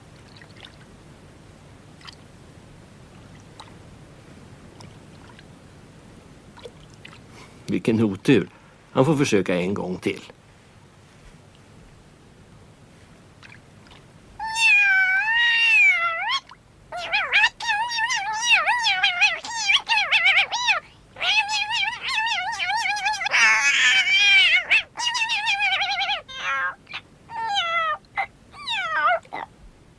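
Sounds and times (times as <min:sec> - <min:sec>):
speech: 0:07.7 - 0:10.4
upset cat meowing: 0:14.4 - 0:29.5.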